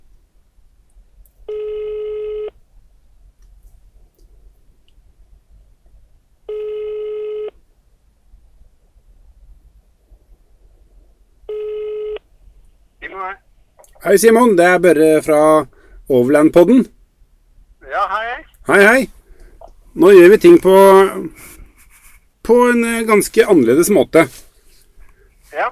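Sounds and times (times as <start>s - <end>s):
telephone ringback tone on an outgoing call: 1.5s - 2.5s, 6.5s - 7.6s, 11.5s - 12.2s
speech: 14.0s - 17.0s, 18.7s - 19.2s, 20.0s - 21.6s, 22.5s - 24.4s, 25.5s - 25.7s.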